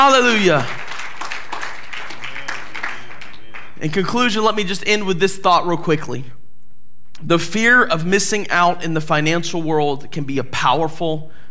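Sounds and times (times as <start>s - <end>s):
speech: 0.0s - 0.8s, 3.8s - 6.4s, 7.2s - 11.4s
crowd clapping hands in applause: 0.0s - 4.6s.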